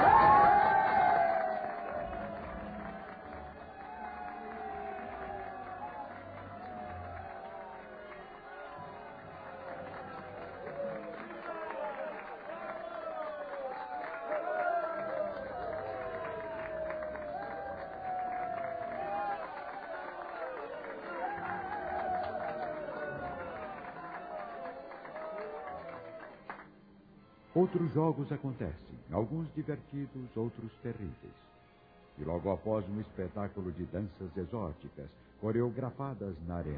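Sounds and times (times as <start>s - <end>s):
crowd of over 300000 spectators cheering at a chariot race in an arena: 0.0s - 26.7s
speech: 27.6s - 31.5s, 32.2s - 36.7s.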